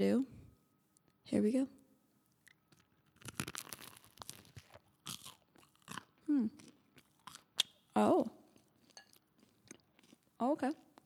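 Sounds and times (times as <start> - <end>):
speech: 0.0 - 0.4, 1.3 - 1.8, 6.3 - 6.6, 8.0 - 8.4, 10.4 - 10.8
person chewing and crunching a bite of food: 2.3 - 11.0.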